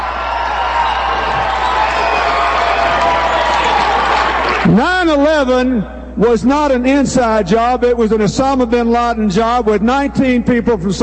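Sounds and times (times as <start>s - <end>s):
large crowd at a political speech screaming and shouting: 0.0s - 4.8s
speech: 4.7s - 11.0s.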